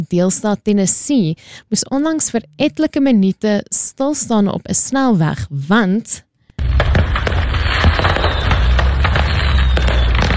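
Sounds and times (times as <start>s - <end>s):
speech: 0.0s - 6.7s
fireworks going off from a burning truck on a highway in Tennessee: 6.6s - 10.3s.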